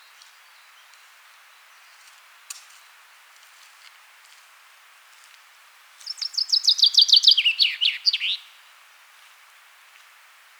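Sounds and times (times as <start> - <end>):
common chaffinch Fringilla coelebs singing: 6.0 - 8.5.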